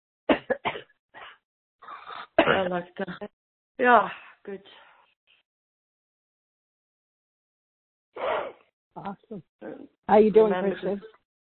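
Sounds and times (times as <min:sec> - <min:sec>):
person coughing: 0:00.3 - 0:02.8, 0:08.2 - 0:08.6
speech: 0:02.5 - 0:04.8, 0:08.2 - 0:11.2.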